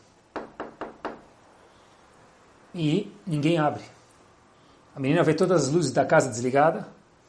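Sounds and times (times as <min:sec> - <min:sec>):
knocking on a door: 0:00.3 - 0:01.3
speech: 0:02.8 - 0:04.0, 0:05.0 - 0:07.0.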